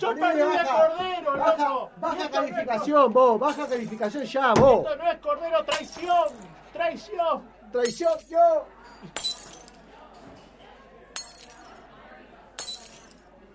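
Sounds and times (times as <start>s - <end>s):
speech: 0.0s - 9.4s
glass objects breaking: 3.5s - 4.0s, 5.7s - 6.5s, 7.8s - 8.3s, 9.1s - 9.8s, 11.2s - 11.7s, 12.6s - 13.2s.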